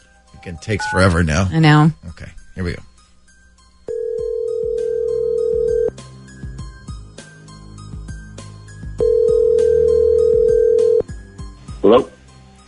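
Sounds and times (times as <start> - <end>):
rhythmic music: 0.0 - 12.6
speech: 0.4 - 2.9, 11.9 - 12.1
long steady ringback tones of an outgoing phone call: 3.9 - 5.9, 9.0 - 11.0.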